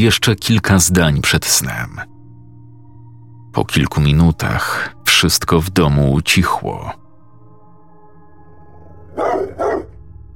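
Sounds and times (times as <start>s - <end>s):
speech: 0.0s - 2.1s, 3.6s - 7.0s
dog barking outside a house at night: 9.1s - 10.0s.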